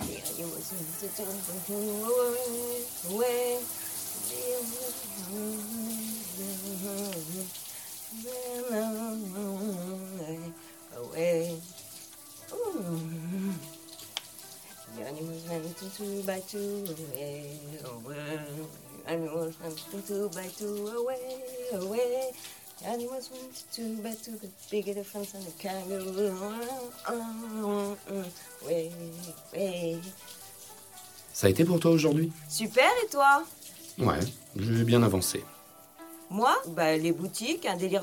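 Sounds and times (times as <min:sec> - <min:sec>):
shower water running: 0:00.0 - 0:38.0
speech: 0:00.7 - 0:11.7, 0:15.1 - 0:30.4, 0:31.4 - 0:35.5, 0:36.3 - 0:38.0.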